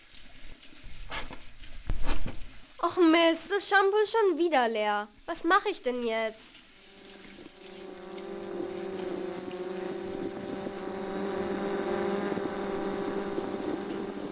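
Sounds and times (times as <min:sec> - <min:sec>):
speech: 0:02.9 - 0:06.5
small postal delivery drone rotor buzz: 0:06.6 - 0:14.3.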